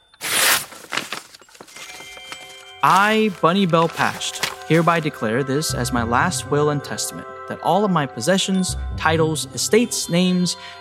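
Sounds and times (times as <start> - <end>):
sealed paper envelope being torn open: 0.2 - 5.1
paper crinkling rustles: 0.2 - 5.3
speech: 2.8 - 10.8.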